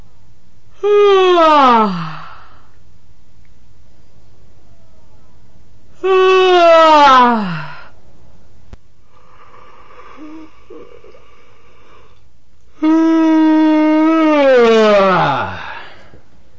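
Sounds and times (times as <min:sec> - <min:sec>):
patients yawning: 0:00.8 - 0:02.7, 0:06.0 - 0:08.0, 0:09.3 - 0:12.1, 0:12.8 - 0:16.2.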